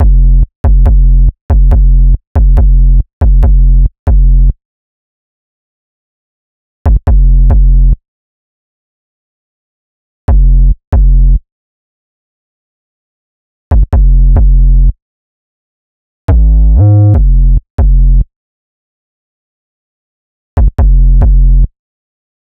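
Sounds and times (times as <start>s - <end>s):
wet bass: 0.0s - 4.6s, 6.9s - 8.0s, 10.3s - 11.4s, 13.7s - 15.0s, 16.3s - 18.3s, 20.6s - 21.8s.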